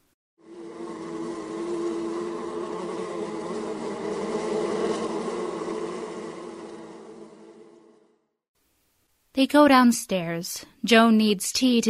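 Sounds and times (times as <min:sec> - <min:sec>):
swarm of honeybees buzzing: 0:00.4 - 0:08.4
speech: 0:09.4 - 0:11.8.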